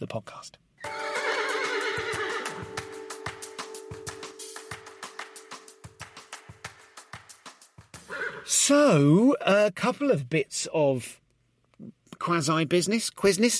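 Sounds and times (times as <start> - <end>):
speech: 0.0 - 1.1, 8.5 - 11.2, 11.8 - 13.5
horse neighing: 0.8 - 2.6, 8.0 - 8.5.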